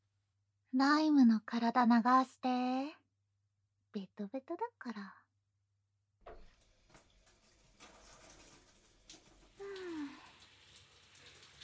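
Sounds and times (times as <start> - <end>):
speech: 0.7 - 3.0, 3.9 - 5.2
shower water spraying: 6.3 - 11.6.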